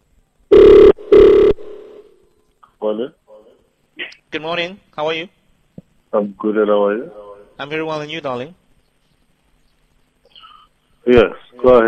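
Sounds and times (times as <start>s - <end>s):
telephone ringing with buzzing rings as a call is placed: 0.5s - 1.6s
speech: 2.8s - 3.2s, 4.0s - 5.4s, 6.1s - 8.6s, 11.1s - 11.8s.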